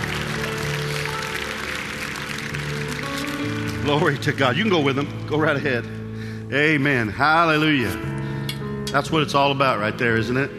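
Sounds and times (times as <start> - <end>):
church audience clapping: 0.0 - 5.1
sustained low musical tones humming: 0.0 - 10.5
speech: 3.9 - 8.2, 8.9 - 10.5.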